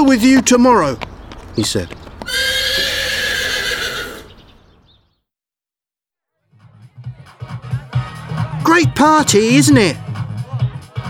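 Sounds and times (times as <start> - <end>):
speech: 0.1 - 2.6, 8.7 - 10.0
large black horse neighing in a back garden: 2.2 - 4.4.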